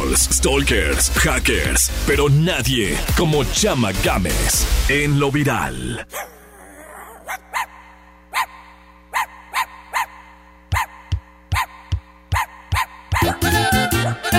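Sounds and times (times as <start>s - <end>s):
speech: 0.2s - 6.3s
small dog yapping: 6.1s - 14.2s.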